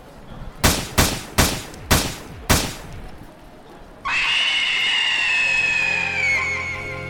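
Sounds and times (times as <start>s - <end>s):
.38 revolver shots: 0.6s - 3.1s
sustained bright tonal wail: 4.1s - 7.0s.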